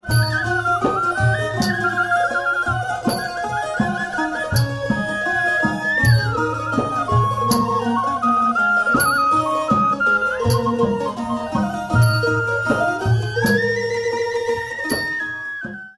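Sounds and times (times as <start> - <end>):
Thai folk music: 0.0 - 15.9.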